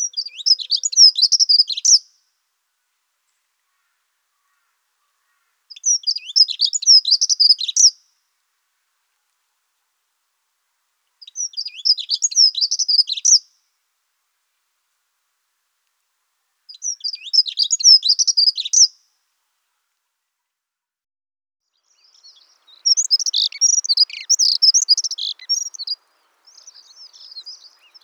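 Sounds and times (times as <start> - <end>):
dunnock giving high-pitched twittering song, Prunella modularis: 0.0 - 2.0, 3.8 - 8.0, 11.2 - 13.4, 16.7 - 18.9, 21.7 - 28.0.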